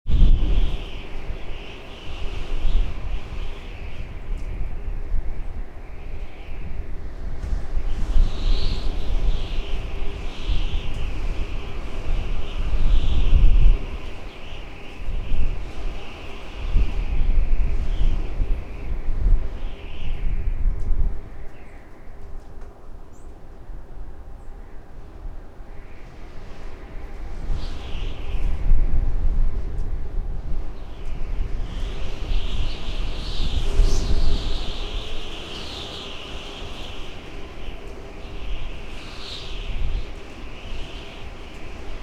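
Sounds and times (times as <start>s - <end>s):
wind: 0.0s - 42.0s.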